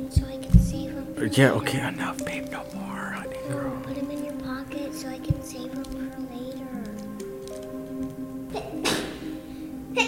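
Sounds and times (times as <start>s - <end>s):
steady tonal hum: 0.0s - 10.0s
speech: 1.2s - 2.7s
child sneezing: 8.5s - 9.4s.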